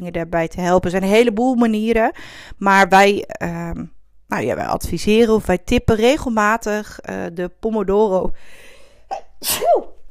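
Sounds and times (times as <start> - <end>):
speech: 0.0 - 9.9
loud sneeze: 9.1 - 10.0.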